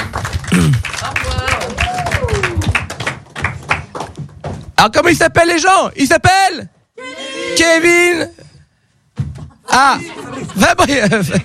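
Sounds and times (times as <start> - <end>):
audience applauding improv performers: 0.0 - 4.2
people whooping and cheering: 1.3 - 2.8
speech: 4.8 - 6.7, 7.5 - 8.3, 9.7 - 11.4
laughter: 9.5 - 11.4.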